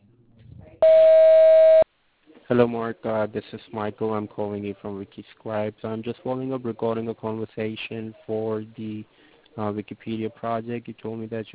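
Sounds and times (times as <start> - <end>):
voicemail beep tone: 0.8 - 1.8
speech: 2.5 - 11.5.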